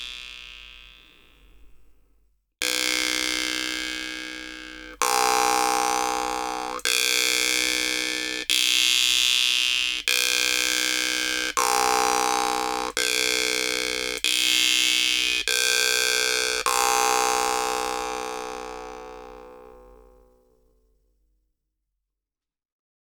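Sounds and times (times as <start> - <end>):
jew's harp: 2.7 - 19.1.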